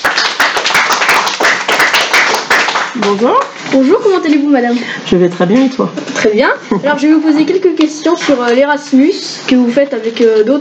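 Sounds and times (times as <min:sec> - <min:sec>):
audience applause from a small group: 0:00.0 - 0:03.6
speech: 0:03.1 - 0:10.5.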